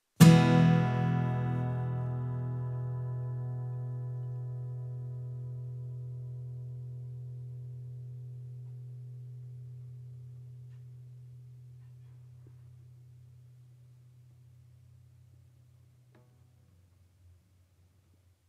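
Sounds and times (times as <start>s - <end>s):
acoustic guitar: 0.0s - 13.5s.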